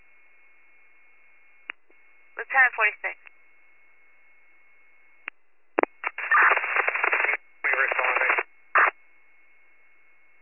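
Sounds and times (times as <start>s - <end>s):
radio static crackling in tinny bursts: 2.4s - 3.3s, 5.8s - 9.0s
speech: 2.6s - 3.3s.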